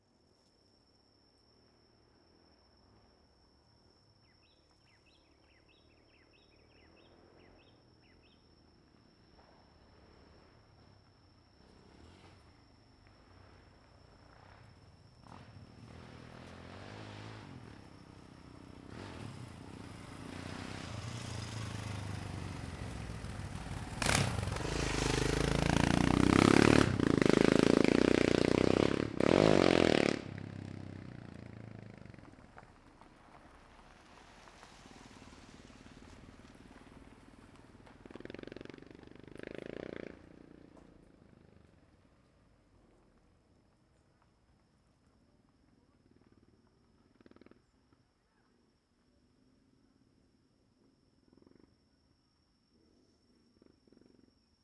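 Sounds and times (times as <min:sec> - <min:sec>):
motocross motorcycles passing fast on an asphalt street: 0:09.7 - 0:42.4.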